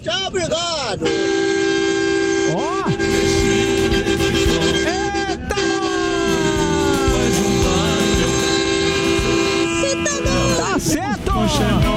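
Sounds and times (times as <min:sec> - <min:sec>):
speech: 0:00.0 - 0:01.2
loud vehicle horns honking along with a live radio broadcast: 0:01.0 - 0:11.9
noisy crowd with shouting voices: 0:02.5 - 0:11.9.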